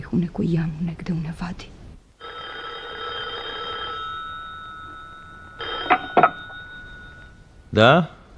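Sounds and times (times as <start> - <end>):
speech: 0.1 - 1.8, 7.7 - 8.2
telephone ringing: 2.2 - 7.6.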